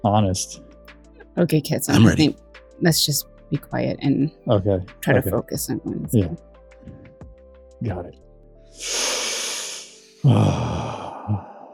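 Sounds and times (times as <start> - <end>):
speech: 0.0 - 0.7, 1.4 - 7.0, 7.8 - 9.0, 10.2 - 11.5
deep breath in: 8.7 - 11.7
sighing exhale: 8.8 - 11.7.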